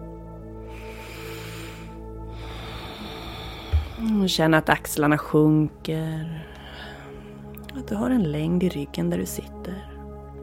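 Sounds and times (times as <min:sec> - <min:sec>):
slow soft breathing through both nostrils during a seated breathing exercise: 0:00.6 - 0:04.0
speech: 0:04.0 - 0:06.5, 0:07.9 - 0:09.9.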